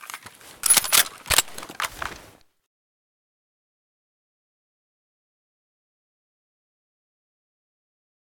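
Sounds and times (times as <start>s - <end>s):
L85 rifle misfire: 0.6s - 1.8s.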